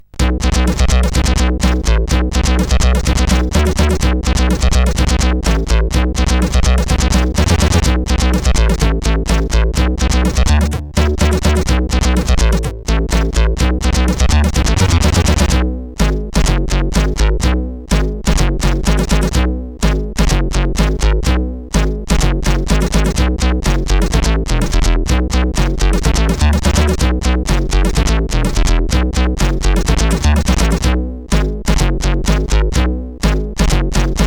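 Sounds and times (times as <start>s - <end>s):
funky synthesizer bass on a SID chip: 0.0s - 34.2s.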